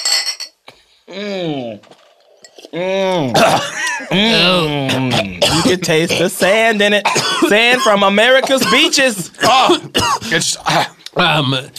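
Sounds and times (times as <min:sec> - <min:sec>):
shot glasses clinking together in a toast: 0:00.0 - 0:00.6
speech: 0:01.1 - 0:02.0, 0:02.7 - 0:11.7.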